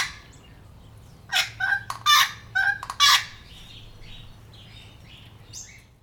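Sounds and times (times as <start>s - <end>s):
wattlebird giving harsh grating notes: 1.3s - 3.7s.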